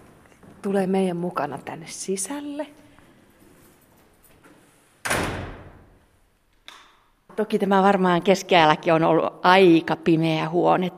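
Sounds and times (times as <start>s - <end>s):
speech: 0.6s - 2.8s, 7.4s - 10.9s
wooden door banging shut: 5.0s - 6.0s.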